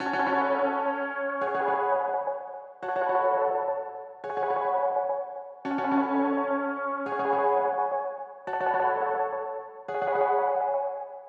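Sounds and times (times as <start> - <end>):
dark 170 BPM F sharp minor piano melody loop: 0.0 - 11.2.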